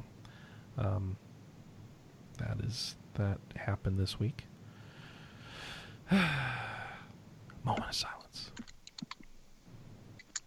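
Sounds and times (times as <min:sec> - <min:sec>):
speech: 0:00.8 - 0:01.3, 0:02.4 - 0:04.5, 0:06.1 - 0:06.6, 0:07.9 - 0:08.2
keyboard clicks: 0:08.5 - 0:09.3, 0:10.2 - 0:10.4.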